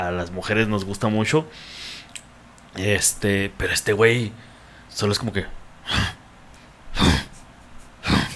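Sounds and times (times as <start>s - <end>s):
speech: 0.0s - 2.1s, 2.8s - 6.1s
person imitating effortful grunts: 5.8s - 6.2s, 6.9s - 7.4s, 8.0s - 8.3s.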